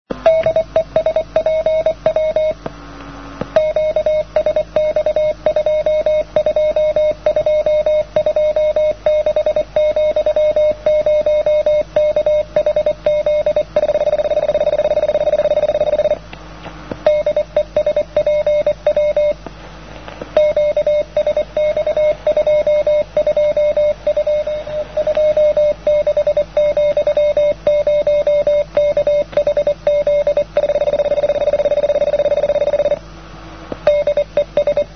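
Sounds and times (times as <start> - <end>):
CW morse code signal: 0.2 - 2.6, 3.5 - 16.2, 17.0 - 19.4, 20.3 - 33.0, 33.8 - 34.9.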